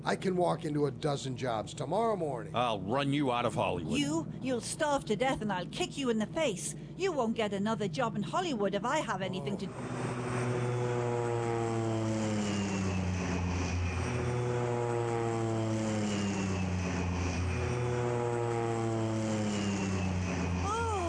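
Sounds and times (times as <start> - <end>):
speech: 0.0 - 10.2
propeller airplane climbing: 9.4 - 21.0.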